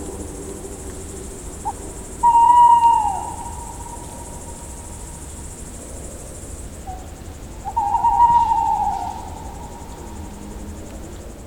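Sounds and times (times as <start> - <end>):
tawny owl hoot: 2.2 - 5.2, 6.9 - 10.4.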